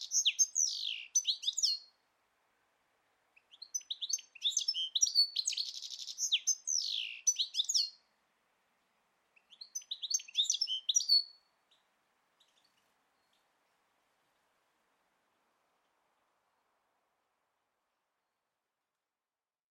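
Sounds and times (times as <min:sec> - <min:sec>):
bird giving high scratchy twitters and sweeping chirps: 0:00.0 - 0:01.8, 0:03.5 - 0:08.0, 0:09.4 - 0:11.8.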